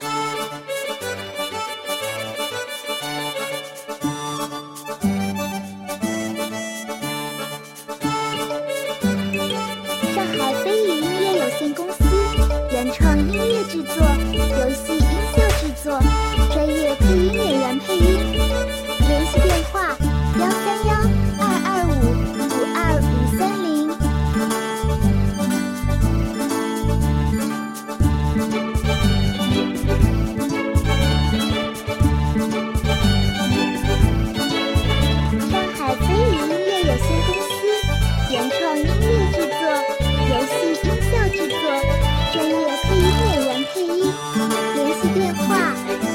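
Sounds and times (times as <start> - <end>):
relaxed cheerful Japanese-style orchestral music: 0.0 - 46.1.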